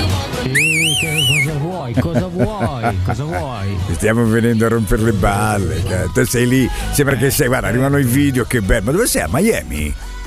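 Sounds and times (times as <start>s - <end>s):
person whistling a loud warbling call to call someone: 0.5s - 1.6s
speech: 0.5s - 10.1s
laughter: 1.7s - 7.4s.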